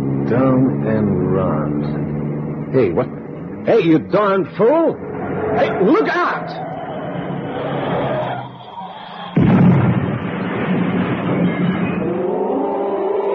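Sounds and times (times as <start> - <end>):
rumbling grinding noise of the car wreck settling: 0.0 - 13.1
car engine droning and whining: 0.0 - 13.3
speech: 0.3 - 6.7
car crash into rock face: 7.1 - 12.6.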